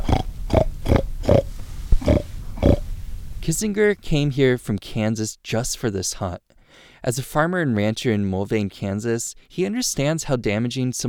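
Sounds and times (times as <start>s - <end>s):
hunter imitating pig oinks to lure hogs in the woods: 0.0s - 1.4s, 2.0s - 2.8s
speech: 3.5s - 11.0s.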